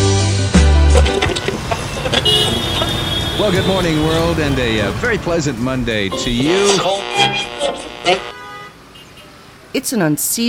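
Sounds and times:
rush hour traffic hum: 0.1s - 10.4s
car horn honks in rush hour traffic: 1.0s - 4.3s, 6.2s - 9.3s
speech: 3.5s - 7.5s, 8.1s - 8.3s, 9.7s - 10.4s.

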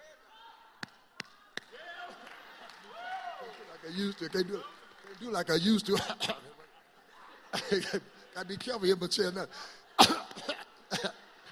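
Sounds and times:
laughter: 3.7s - 11.5s
speech: 3.8s - 6.6s, 7.5s - 10.5s
harsh coughing after taking a hit: 5.9s - 6.5s, 10.0s - 11.2s.

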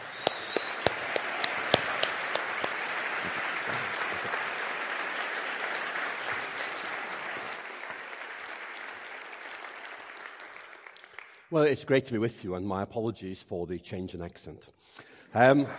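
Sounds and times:
audience applauding to welcome a speaker: 0.0s - 11.4s
speech: 11.5s - 15.7s.

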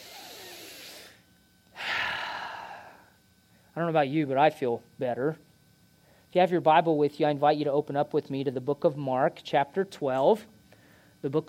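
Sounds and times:
people taking a deep breath in together during a church service: 1.8s - 3.1s
speech: 3.8s - 5.5s, 6.3s - 10.5s, 11.2s - 11.4s.

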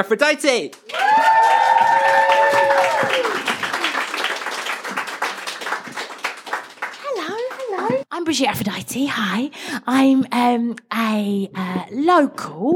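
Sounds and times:
speech: 0.0s - 1.3s, 8.2s - 12.7s
audience clapping: 0.7s - 8.0s
audience whooping and cheering: 0.9s - 4.6s
audience stomping: 1.0s - 3.9s, 7.0s - 8.0s.

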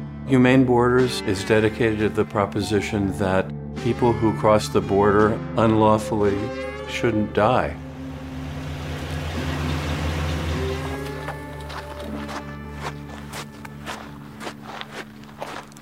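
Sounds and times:
speech: 0.3s - 7.8s
truck engine idling: 7.8s - 13.4s
crunchy footsteps of people getting out of a truck: 10.9s - 15.8s.

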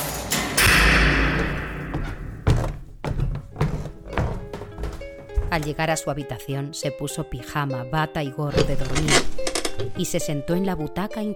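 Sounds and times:
door slamming shut: 0.0s - 2.8s
dull uneven thuds and knocks: 1.4s - 5.8s
speech: 5.5s - 11.3s.

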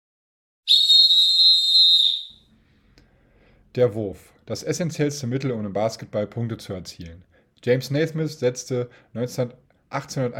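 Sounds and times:
referee's whistle blast to start play: 0.7s - 2.4s
speech: 3.7s - 10.3s.

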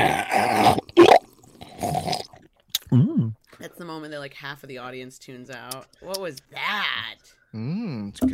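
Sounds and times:
gulping: 0.0s - 3.4s
wet slurping sips of a fizzy soda: 0.5s - 2.9s
speech: 3.8s - 8.3s.

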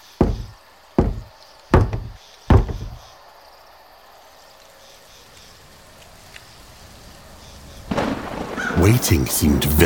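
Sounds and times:
knocking on a solid wooden door: 0.0s - 3.0s
faint thump: 0.2s - 3.1s
speech: 8.8s - 9.8s.

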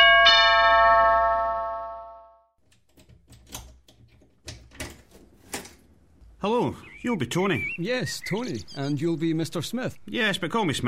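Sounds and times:
doorbell chime: 0.0s - 2.5s
front door unlatched and opened: 2.6s - 6.4s
speech: 6.4s - 10.8s.

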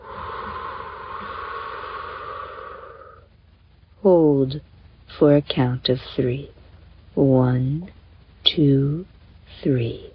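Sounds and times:
slow breathy exhale during a guided breathing exercise: 0.0s - 3.3s
speech: 4.0s - 6.6s, 7.2s - 10.1s.

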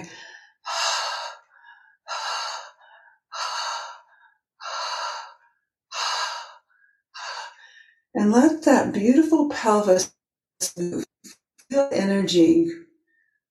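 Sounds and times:
fast deliberate breathing with forceful exhales: 0.0s - 7.8s
speech: 8.2s - 11.1s, 11.7s - 12.8s.

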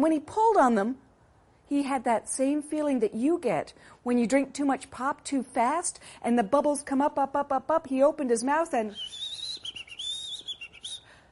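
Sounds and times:
speech: 0.0s - 1.0s, 1.7s - 9.3s
whistled bird song: 8.9s - 11.2s.

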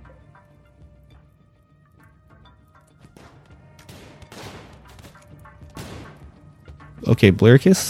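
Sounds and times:
video game gunfire of gunners rescuing colonists: 3.2s - 6.3s
speech: 7.0s - 7.8s.

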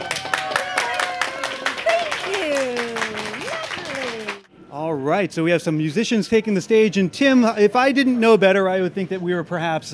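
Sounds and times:
audience applause: 0.0s - 4.5s
speech: 5.1s - 9.9s.

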